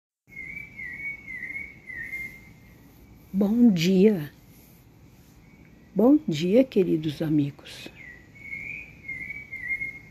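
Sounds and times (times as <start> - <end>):
bird singing a high note at dawn: 0.3 - 2.8, 7.9 - 10.0
soft low rumble: 0.7 - 10.0
speech: 3.3 - 4.4, 6.0 - 8.0.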